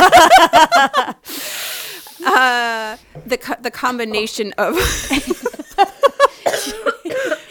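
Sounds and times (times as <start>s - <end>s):
speech: 0.2s - 1.4s, 2.4s - 5.4s
person coughing in a sputtering fit: 6.4s - 7.4s.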